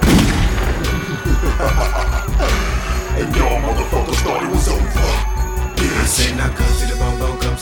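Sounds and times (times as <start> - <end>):
sharp cracks and thuds: 0.0 - 1.3
shotgun blast sound effect: 0.0 - 1.3
laughter: 0.7 - 7.4.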